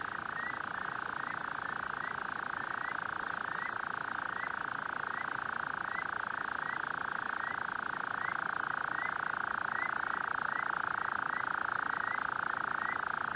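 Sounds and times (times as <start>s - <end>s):
rufous-cheeked nightjar purring churr: 0.0s - 13.3s.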